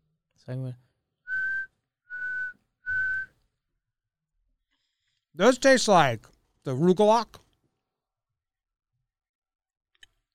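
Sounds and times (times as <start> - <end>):
speech: 0.4 - 0.9, 5.4 - 7.4
person whistling a short tune: 1.3 - 3.4.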